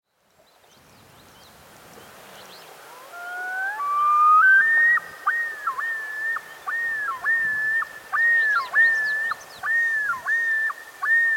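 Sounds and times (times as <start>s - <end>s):
Common Loon calling with a ringing sustained whistle: 2.9s - 11.3s.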